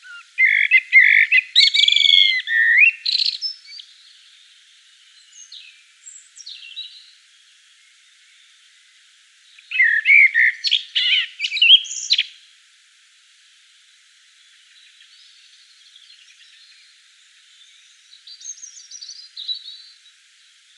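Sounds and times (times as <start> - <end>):
common blackbird singing at dusk in Provence: 0.0 - 4.5, 5.1 - 7.2, 9.5 - 12.4, 14.6 - 20.7.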